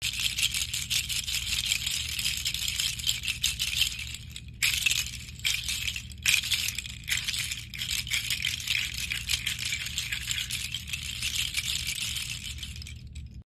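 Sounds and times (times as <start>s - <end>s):
seed shaker: 0.0s - 13.4s.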